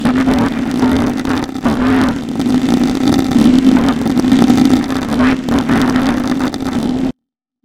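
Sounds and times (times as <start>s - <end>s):
chimeric fart: 0.0s - 7.2s.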